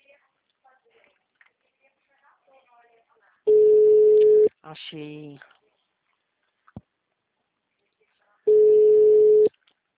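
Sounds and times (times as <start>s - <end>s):
telephone line tone while calling a number: 3.5s - 4.5s, 8.5s - 9.5s
speech: 4.7s - 5.5s.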